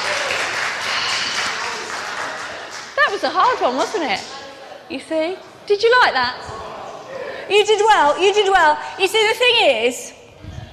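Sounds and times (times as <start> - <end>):
audience applause: 0.0 - 3.6
speech: 3.1 - 6.6, 7.5 - 10.1.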